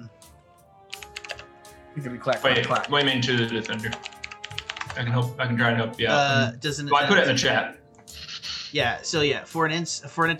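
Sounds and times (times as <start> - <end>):
clacky keystrokes on a computer keyboard: 0.9 - 1.5, 2.3 - 5.0
speech: 2.0 - 4.1, 5.0 - 7.8, 8.7 - 10.3.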